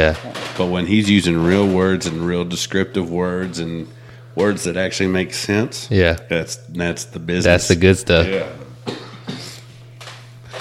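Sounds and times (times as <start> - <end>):
speech: 0.0 - 9.0
steady low electrical hum: 0.0 - 10.5
person coughing: 8.8 - 9.6.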